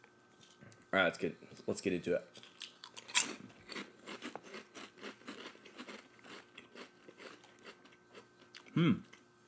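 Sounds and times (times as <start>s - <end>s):
speech: 0.9s - 2.5s, 8.8s - 9.1s
crunching and chewing of corn snack chips: 2.3s - 9.4s.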